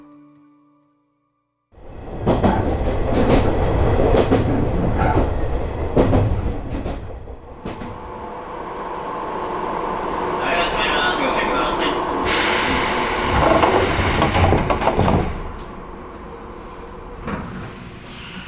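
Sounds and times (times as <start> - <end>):
train on the Shinonoi Line in Japan rumbling along the rails: 2.0 - 8.2, 9.4 - 17.8.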